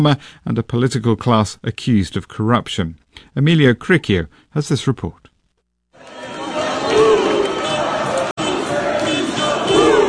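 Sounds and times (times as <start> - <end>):
speech: 0.0 - 5.3
protest crowd shouting and chanting in evening streets during a march against the government: 6.0 - 10.0.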